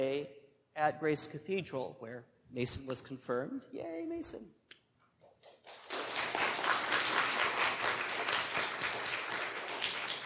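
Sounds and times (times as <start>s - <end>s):
speech: 0.0s - 4.6s
crowd applauding: 5.6s - 10.2s.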